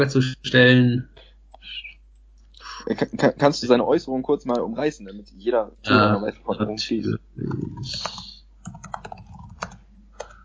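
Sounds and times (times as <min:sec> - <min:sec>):
speech: 0:00.0 - 0:01.9, 0:02.8 - 0:08.2
typing on a computer keyboard: 0:07.5 - 0:10.4.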